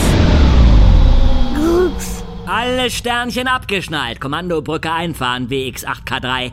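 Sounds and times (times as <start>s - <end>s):
short rising whine: 0.0s - 3.9s
spaceship braking sound effect with low rumbling whoosh: 0.0s - 4.0s
speech: 2.6s - 6.5s.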